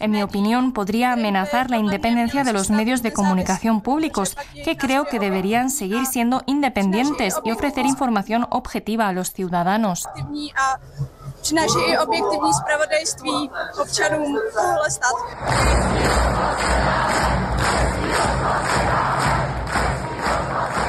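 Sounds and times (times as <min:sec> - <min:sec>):
speech: 0:00.0 - 0:19.3
large outdoor crowd of protesters chanting: 0:11.7 - 0:20.8
crowd of protesters applauding: 0:15.3 - 0:20.8.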